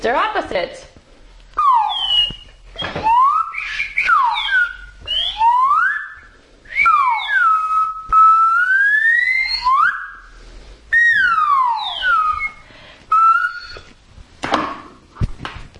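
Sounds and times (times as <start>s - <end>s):
speech: 0.0s - 0.9s
police-style whistle blasts: 1.6s - 13.9s.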